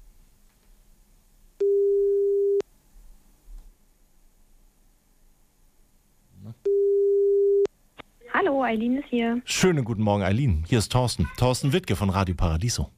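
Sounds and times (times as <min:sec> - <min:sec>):
telephone ringback tone on an outgoing call: 0:01.6 - 0:02.6, 0:06.7 - 0:07.7
speech: 0:08.6 - 0:12.9.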